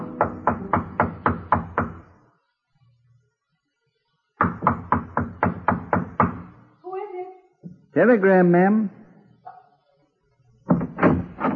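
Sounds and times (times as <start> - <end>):
knocking on a wooden hotel room door: 0.0 - 2.0, 4.4 - 6.5, 10.7 - 11.5
speech: 8.0 - 9.0.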